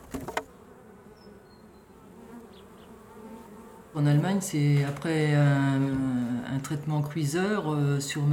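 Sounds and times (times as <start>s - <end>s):
many honeybees buzzing at an opened hive: 0.0s - 8.3s
speech: 4.0s - 8.3s.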